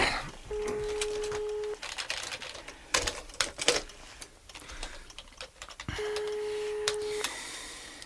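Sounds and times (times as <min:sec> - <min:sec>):
telephone ringback tone ringing unanswered: 0:00.5 - 0:01.8, 0:05.9 - 0:07.4
rapid keyboard typing: 0:00.5 - 0:07.4.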